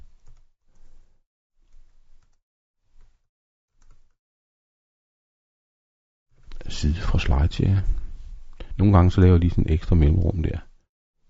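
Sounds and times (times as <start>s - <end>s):
typing on a computer keyboard: 0.0s - 1.0s, 3.8s - 4.2s
speech: 6.7s - 8.0s, 8.8s - 10.7s.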